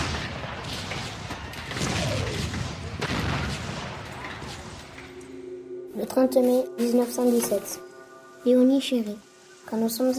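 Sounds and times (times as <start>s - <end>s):
battlefield gunfire at the front in a war: 0.0s - 5.1s
battlefield explosions at the front in a war: 0.0s - 5.2s
speech: 6.0s - 10.1s.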